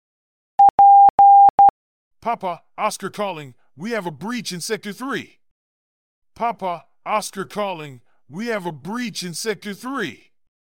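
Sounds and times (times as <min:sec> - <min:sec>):
mid-pitched Morse code tone beeps: 0:00.6 - 0:01.7
speech: 0:02.2 - 0:05.4, 0:06.4 - 0:10.3.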